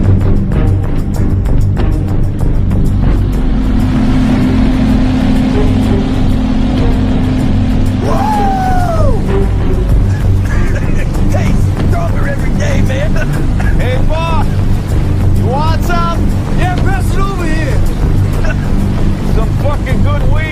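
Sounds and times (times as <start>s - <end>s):
motorboat engine droning: 0.0s - 20.5s
people calling out: 8.0s - 9.3s
laughter: 10.0s - 14.7s, 18.4s - 19.8s.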